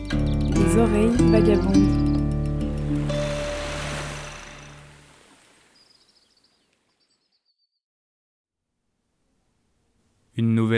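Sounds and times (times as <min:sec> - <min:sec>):
speech: 0:00.1 - 0:02.0
sea washing around a sailboat underway: 0:02.7 - 0:06.2.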